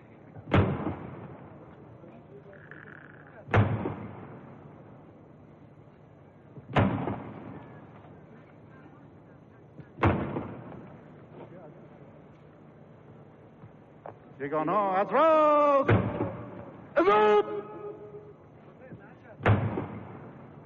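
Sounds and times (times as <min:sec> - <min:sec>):
ceremonial cannon salute booms with rolling outdoor echo: 0:00.4 - 0:01.4, 0:03.5 - 0:04.6, 0:06.7 - 0:07.6, 0:10.0 - 0:10.9, 0:15.8 - 0:17.0, 0:19.4 - 0:20.6
speech: 0:14.4 - 0:16.1, 0:17.0 - 0:17.4.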